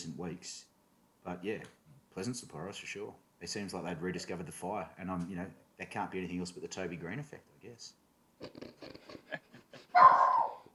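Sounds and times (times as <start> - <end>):
speech: 0.1 - 10.6
Boston Terrier barking: 10.0 - 10.7.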